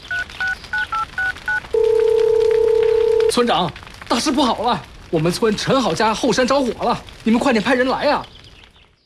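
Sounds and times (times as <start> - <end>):
telephone keypad tones: 0.1 - 3.3
speech: 3.4 - 8.3.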